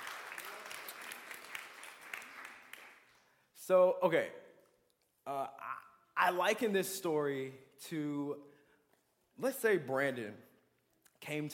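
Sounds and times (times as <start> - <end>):
audience clapping: 0.0 - 3.4
speech: 3.7 - 4.4, 5.3 - 8.5, 9.4 - 10.5, 11.2 - 11.5.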